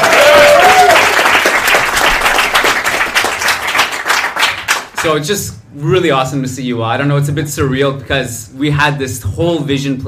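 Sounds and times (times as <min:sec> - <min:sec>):
live audience at a show applauding: 0:00.0 - 0:05.2
speech: 0:05.0 - 0:10.0.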